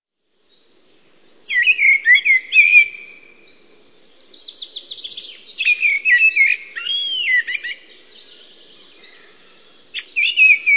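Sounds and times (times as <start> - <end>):
Eurasian blackbird singing: 1.5 - 10.7.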